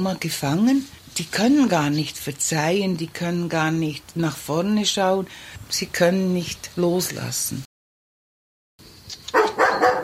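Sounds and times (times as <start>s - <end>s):
speech: 0.0s - 7.6s
dog barking on a farm: 9.3s - 10.0s.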